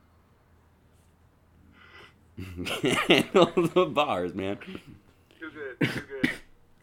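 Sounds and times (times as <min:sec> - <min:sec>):
person coughing: 0:02.4 - 0:03.6, 0:04.6 - 0:06.6
speech: 0:02.4 - 0:05.0
laughter: 0:02.4 - 0:06.4.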